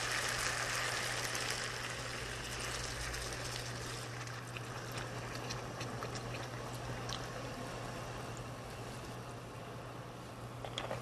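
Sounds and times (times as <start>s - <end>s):
about 500 milliliters of water pouring into a cooking pot: 0.0s - 5.2s
low steady hum: 0.0s - 11.0s.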